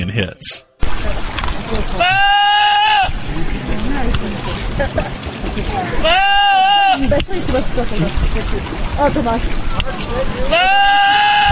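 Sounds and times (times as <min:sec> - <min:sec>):
outdoor noise: 0:00.0 - 0:11.5
speech: 0:00.1 - 0:00.7, 0:07.1 - 0:11.4
goat yelling like a man: 0:02.0 - 0:03.1, 0:06.0 - 0:07.0, 0:10.5 - 0:11.5.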